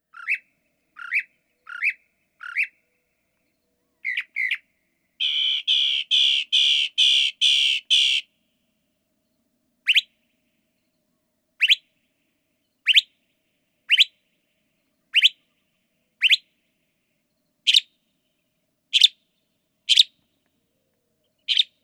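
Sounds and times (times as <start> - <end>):
northern mockingbird song with nightjar mimicry: 0.1 - 4.6, 5.2 - 8.2, 9.9 - 10.1, 11.6 - 11.8, 12.7 - 13.1, 13.9 - 14.1, 14.8 - 16.5, 17.7 - 17.9, 19.0 - 19.2, 19.9 - 21.8.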